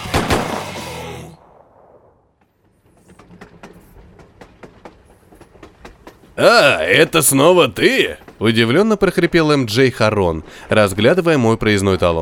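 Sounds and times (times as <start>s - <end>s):
two gunshots fired at once: 0.0s - 2.4s
speech: 6.4s - 12.2s.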